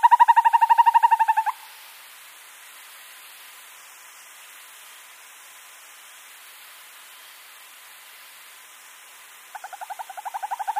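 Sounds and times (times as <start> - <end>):
male Northern hawk-owl giving its display call trill: 0.0 - 1.7, 9.6 - 10.7.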